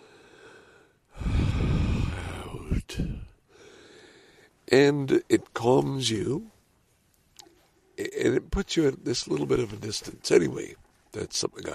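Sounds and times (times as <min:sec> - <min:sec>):
deep audible breath: 0:00.0 - 0:04.6
speech: 0:04.7 - 0:06.5, 0:08.2 - 0:11.7.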